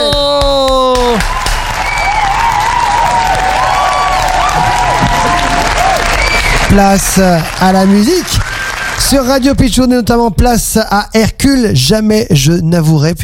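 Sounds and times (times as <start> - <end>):
large crowd applauding: 0.0 - 10.0
whistles from crowd: 1.4 - 2.6, 5.2 - 6.8
speech: 6.8 - 8.4, 9.0 - 13.2.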